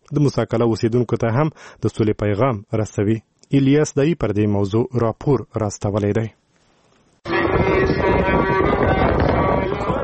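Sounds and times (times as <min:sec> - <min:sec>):
speech: 0:00.1 - 0:06.4
strong dusty wind blowing across open ground in Helmand: 0:07.3 - 0:10.0.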